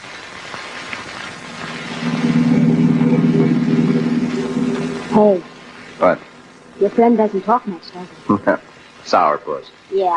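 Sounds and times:
car engine idling, revving and pulling away: 0:01.4 - 0:06.9
speech: 0:05.2 - 0:10.1.

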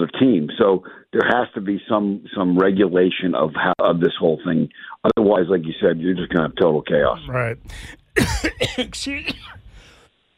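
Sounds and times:
speech: 0:00.0 - 0:09.6
person coughing after choking on a drink: 0:07.6 - 0:09.7.

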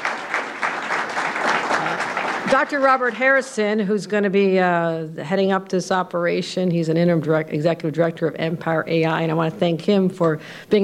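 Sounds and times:
audience applauding at a public speaking event: 0:00.0 - 0:03.2
speech: 0:02.5 - 0:10.8.

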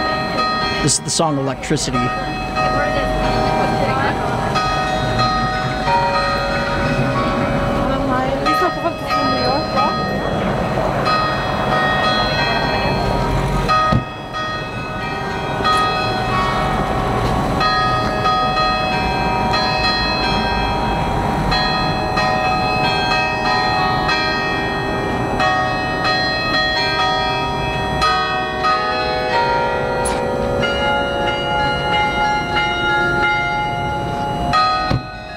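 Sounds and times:
carillon bells playing a melody: 0:00.0 - 0:35.3
speech: 0:00.8 - 0:02.9.

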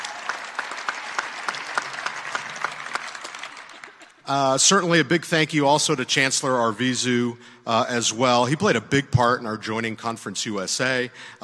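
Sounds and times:
sharper louder claps: 0:00.0 - 0:04.3
sizable audience applauding: 0:00.0 - 0:04.7
speech: 0:04.3 - 0:11.4.

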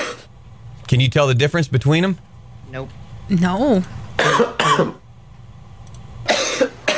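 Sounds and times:
person coughing harshly caused by a chili pepper: 0:00.0 - 0:00.3, 0:04.2 - 0:05.0, 0:06.3 - 0:06.9
speech: 0:00.9 - 0:05.0.

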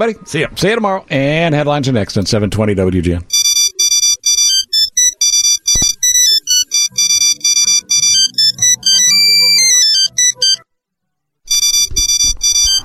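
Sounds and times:
speech: 0:00.0 - 0:03.4
phone ringtone with electronic beeping melody: 0:03.3 - 0:10.6, 0:11.5 - 0:12.8.

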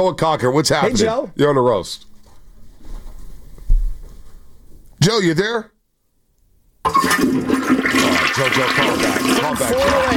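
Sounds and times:
speech: 0:00.0 - 0:02.1, 0:05.0 - 0:05.7, 0:06.8 - 0:10.1
toilet flushing: 0:06.9 - 0:10.1.

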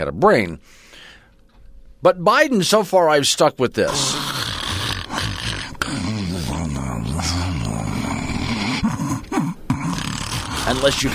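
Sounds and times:
speech: 0:00.0 - 0:01.0, 0:02.0 - 0:04.2, 0:10.7 - 0:11.1
exaggerated snoring sound effect: 0:03.9 - 0:11.1.

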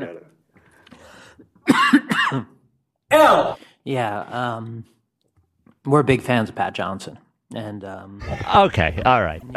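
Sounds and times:
person coughing harshly: 0:01.7 - 0:02.6
speech: 0:02.3 - 0:02.5, 0:03.9 - 0:05.0, 0:05.8 - 0:09.5.

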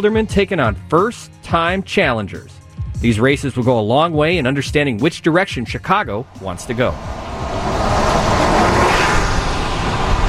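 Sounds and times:
speech: 0:00.0 - 0:07.6
city traffic rushing past on a city avenue: 0:06.1 - 0:10.2.

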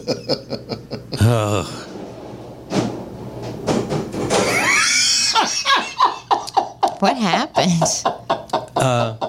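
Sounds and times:
laughter: 0:00.0 - 0:01.4, 0:04.5 - 0:07.0, 0:07.6 - 0:09.2
speech: 0:01.3 - 0:01.8
chairs sliding and scraping down to the floor: 0:01.6 - 0:04.9
chairs squeaking as they settle: 0:01.6 - 0:05.4.

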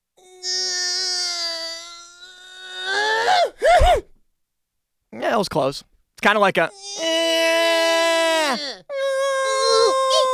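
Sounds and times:
high-pitched whining yawn ending in squeaky notes: 0:00.2 - 0:04.0, 0:06.8 - 0:10.3
speech: 0:05.3 - 0:06.9.

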